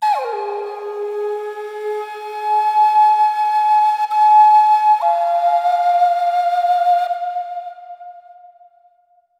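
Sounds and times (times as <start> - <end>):
flute with echo: 0.0 - 9.0.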